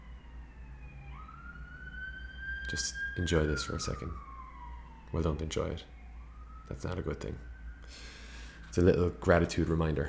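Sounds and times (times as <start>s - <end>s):
emergency vehicle sirens wailing outside: 0.0s - 10.0s
steady low rumble of traffic: 0.0s - 10.0s
speech: 2.7s - 4.3s, 5.1s - 5.9s, 6.7s - 8.1s, 8.8s - 10.0s.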